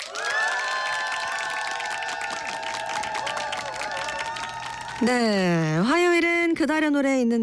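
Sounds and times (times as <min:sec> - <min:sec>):
large crowd cheering and applauding: 0:00.0 - 0:05.2
speech: 0:05.0 - 0:07.4.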